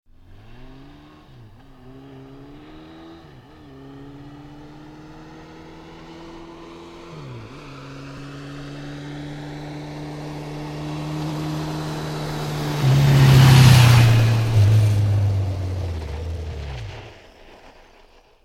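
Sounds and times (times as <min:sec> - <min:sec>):
Honda 1100 motorbike passing and slowing down: 0:00.1 - 0:17.8.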